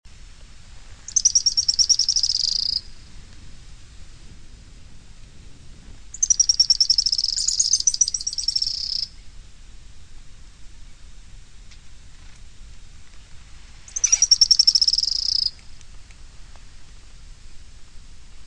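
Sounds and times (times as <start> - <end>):
faint background noise: 0.1 - 18.4
bird song with a high note and a descending trill: 1.1 - 2.9, 6.1 - 9.2, 13.9 - 15.6.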